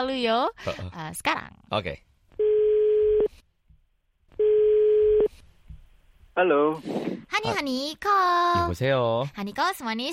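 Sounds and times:
speech: 0.0 - 2.1, 6.4 - 10.1
telephone ringback tone: 4.4 - 5.3.

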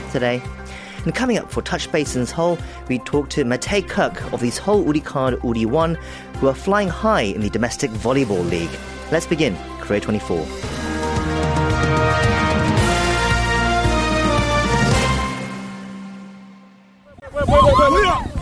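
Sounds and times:
broadcast-style music: 0.0 - 17.3
speech: 0.1 - 10.9
crowd screaming and shouting at an attack scene in Busan South Korea: 17.2 - 18.3.

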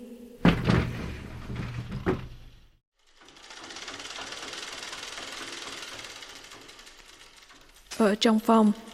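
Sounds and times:
sharp knocks of a sliding door: 0.4 - 2.8
sliding door being pushed open onto a veranda, rattling and rumbling: 0.4 - 7.8
speech: 8.0 - 8.9.

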